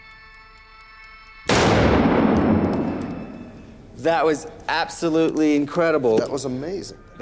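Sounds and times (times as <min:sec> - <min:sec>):
revolver gunshot: 0:01.5 - 0:04.0
rumble of a revolver gunshot: 0:01.5 - 0:04.7
speech: 0:04.0 - 0:07.2.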